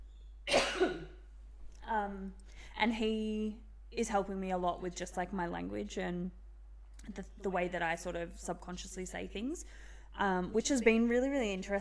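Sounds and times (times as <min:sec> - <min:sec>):
person clearing throat: 0:00.5 - 0:01.2
speech: 0:01.9 - 0:06.4, 0:07.0 - 0:11.7.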